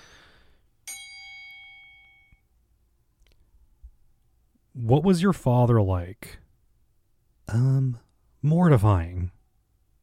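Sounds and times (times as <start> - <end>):
single bright metallic bell ding: 0.8 - 2.4
speech: 4.8 - 6.4, 7.5 - 9.4.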